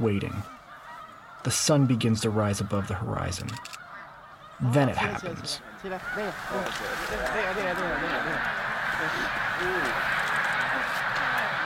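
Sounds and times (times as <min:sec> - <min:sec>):
speech: 0:00.0 - 0:00.6, 0:01.4 - 0:03.8, 0:04.6 - 0:10.2
rushing wash of snow geese wingbeats: 0:00.0 - 0:11.6
snow geese flock honking while taking flight from a lake: 0:00.0 - 0:11.6
laughter: 0:04.6 - 0:11.6.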